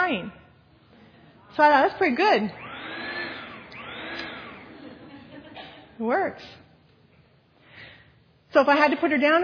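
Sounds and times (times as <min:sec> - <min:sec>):
speech: 0:01.6 - 0:02.6, 0:06.0 - 0:06.6, 0:08.5 - 0:09.4
vacuum cleaner running: 0:01.6 - 0:05.6
laughter: 0:04.6 - 0:06.0.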